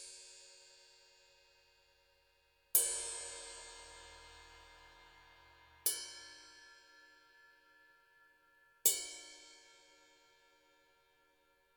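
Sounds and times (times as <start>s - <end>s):
20 inch ride cymbal played with plastic rods: 2.8s - 10.1s.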